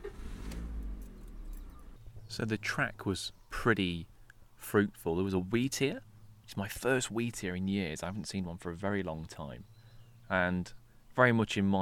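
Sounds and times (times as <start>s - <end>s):
car engine starting heard from inside: 0.0s - 2.3s
speech: 2.4s - 9.7s, 10.3s - 11.8s.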